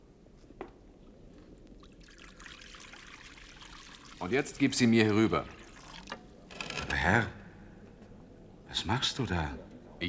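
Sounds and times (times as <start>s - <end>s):
water pouring into a bowl: 1.8s - 6.3s
speech: 4.2s - 5.6s, 7.1s - 7.4s, 8.8s - 10.0s.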